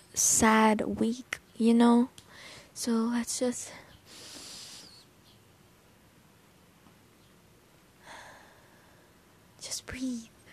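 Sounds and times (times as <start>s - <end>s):
hiss: 0.0s - 10.5s
speech: 0.2s - 2.2s, 2.8s - 3.8s, 9.9s - 10.3s
nasal sniffs: 4.1s - 5.1s.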